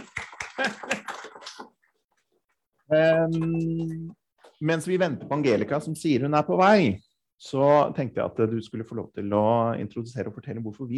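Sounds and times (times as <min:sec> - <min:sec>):
laughter: 0:00.0 - 0:01.7
small group applauding: 0:00.0 - 0:02.0
speech: 0:00.6 - 0:01.2, 0:02.9 - 0:10.9.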